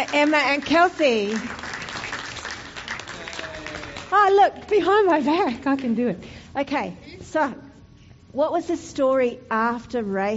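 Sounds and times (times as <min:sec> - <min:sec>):
audience applauding at a storytelling gathering: 0:00.0 - 0:04.3
speech: 0:00.1 - 0:01.7, 0:04.1 - 0:07.6, 0:08.3 - 0:10.3.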